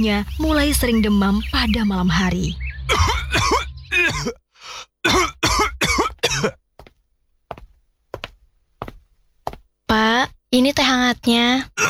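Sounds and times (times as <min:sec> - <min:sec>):
speech: 0:00.0 - 0:02.6, 0:04.2 - 0:04.4, 0:05.0 - 0:05.3, 0:10.5 - 0:11.8
man clearing throat: 0:02.9 - 0:04.4, 0:05.0 - 0:06.6
man with persistent cough coughing: 0:02.9 - 0:04.4, 0:05.0 - 0:06.6.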